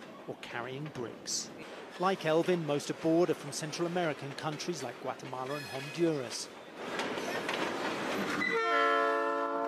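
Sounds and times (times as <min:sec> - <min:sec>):
cargo train rumbling and grinding along rails: 0:00.0 - 0:09.6
speech: 0:00.3 - 0:07.0
long steady train horn blaring: 0:08.4 - 0:09.6.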